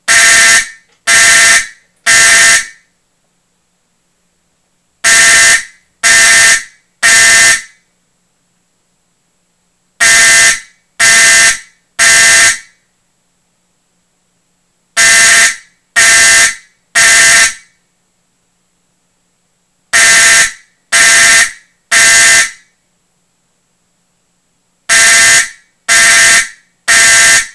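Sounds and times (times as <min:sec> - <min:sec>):
Simplex 4051 fire alarm horn sounding Code-3: 0:00.1 - 0:02.9, 0:05.0 - 0:07.8, 0:10.0 - 0:12.8, 0:15.0 - 0:17.8, 0:19.9 - 0:22.7, 0:24.9 - 0:27.5.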